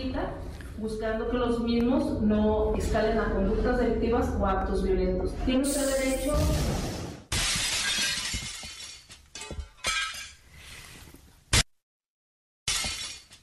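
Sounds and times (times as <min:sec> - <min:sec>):
speech: 0:00.0 - 0:06.9
sharp impacts of more glass breaking: 0:07.3 - 0:10.4, 0:12.7 - 0:13.4
window shattering with a loud crash: 0:07.3 - 0:10.4, 0:12.7 - 0:13.4.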